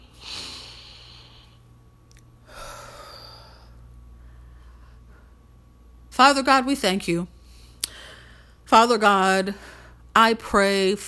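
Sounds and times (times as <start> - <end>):
deep breathing: 0.0 - 1.7, 2.4 - 5.4, 7.4 - 8.6
steady low hum: 0.0 - 11.0
speech: 6.2 - 7.3, 8.7 - 11.0.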